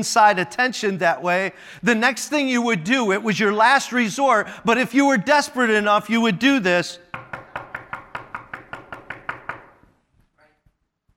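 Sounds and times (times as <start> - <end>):
speech: 0.0 - 7.1
pounding on a door: 7.1 - 9.8.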